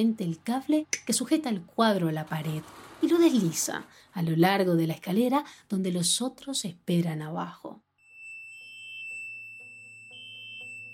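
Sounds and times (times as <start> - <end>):
speech: 0.0 - 7.8
security alarm with piercing high tone set off during a break-in: 8.0 - 10.9.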